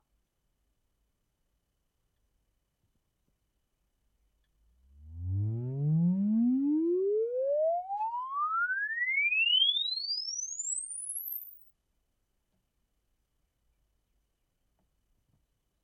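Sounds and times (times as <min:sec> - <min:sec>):
impulse response in a Pontiac Firebird interior: 0:04.7 - 0:11.6.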